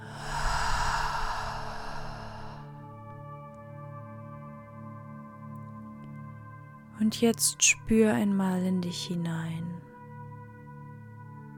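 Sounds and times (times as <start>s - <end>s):
slow deep breath in through the nose and out through the mouth: 0.0s - 2.8s
speech: 7.0s - 9.9s.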